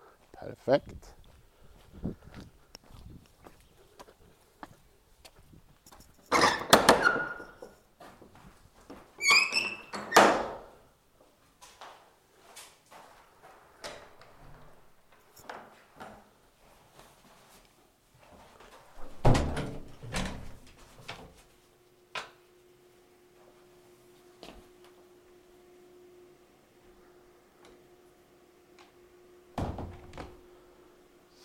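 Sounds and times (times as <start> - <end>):
footsteps: 0.2 - 6.3, 7.5 - 9.2, 11.2 - 19.2, 23.4 - 25.0
speech: 0.4 - 1.2, 2.0 - 2.2
squealing hinge creak of a heavy wooden church door: 9.2 - 10.7
heavy wooden church door shutting: 9.4 - 10.7, 19.0 - 20.7, 29.6 - 30.4.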